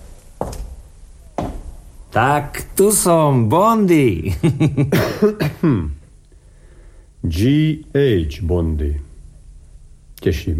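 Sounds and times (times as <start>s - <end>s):
speech: 2.1s - 6.0s, 7.2s - 9.1s, 10.2s - 10.5s
person coughing harshly: 4.9s - 6.0s.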